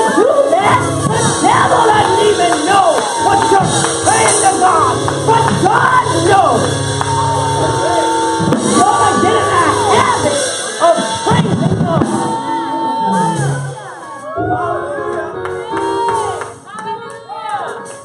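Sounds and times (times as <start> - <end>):
audience shouting hallelujah and cheering: 0.0 - 18.0
scattered clapping: 1.2 - 9.2, 15.0 - 18.0.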